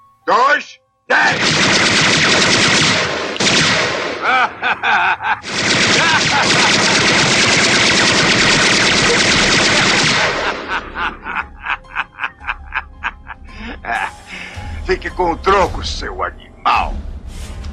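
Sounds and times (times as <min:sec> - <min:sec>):
speech: 0:00.3 - 0:01.8, 0:14.9 - 0:17.0
machine gun firing: 0:01.3 - 0:04.3, 0:05.4 - 0:11.0
laughter: 0:04.2 - 0:07.2, 0:09.8 - 0:14.6.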